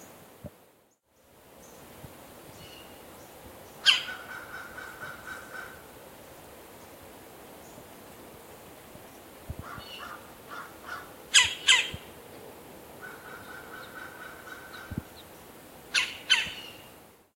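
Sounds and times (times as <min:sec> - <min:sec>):
Melanerpes carolinus harsh calls: 0:03.8 - 0:05.8, 0:09.6 - 0:12.1, 0:13.0 - 0:15.3, 0:15.9 - 0:16.9.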